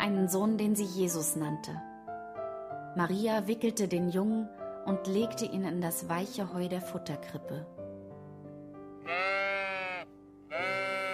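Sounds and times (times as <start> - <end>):
speech: 0.0 - 1.9, 3.0 - 7.8
sheep bleating: 9.0 - 11.1.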